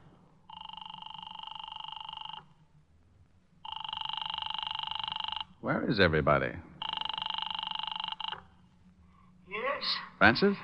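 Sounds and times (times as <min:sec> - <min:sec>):
faint low hum: 0:00.0 - 0:10.6
telephone ringback tone on an outgoing call: 0:00.5 - 0:02.5, 0:03.6 - 0:05.5, 0:06.8 - 0:08.5
speech: 0:05.6 - 0:06.7, 0:09.8 - 0:10.6.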